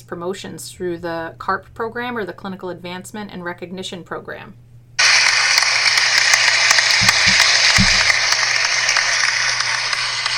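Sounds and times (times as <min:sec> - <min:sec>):
speech: 0:00.1 - 0:04.6
canned crowd applause sound effect: 0:05.0 - 0:10.3.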